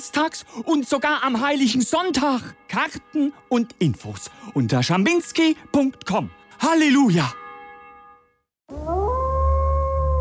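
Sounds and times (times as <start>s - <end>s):
speech: 0.0s - 7.4s
single wolf howling: 8.7s - 10.1s.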